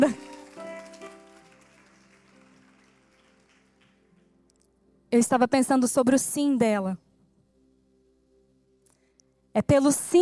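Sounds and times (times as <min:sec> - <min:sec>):
speech: 0:00.0 - 0:00.2, 0:05.1 - 0:07.0, 0:09.6 - 0:10.1
crowd applauding: 0:00.0 - 0:04.3.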